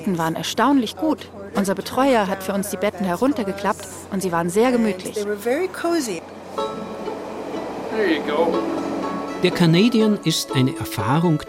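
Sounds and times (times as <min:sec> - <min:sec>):
speech: 0:00.0 - 0:06.8, 0:08.0 - 0:08.8, 0:09.4 - 0:11.4
Canadian passenger train rolling through the Rocky Mountains in Canada: 0:03.4 - 0:11.4.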